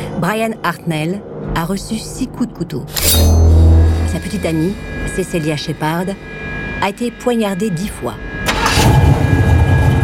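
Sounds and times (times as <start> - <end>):
speech: 0.2 - 3.5, 4.2 - 9.0
car engine cranking, starting and idling: 8.4 - 9.8.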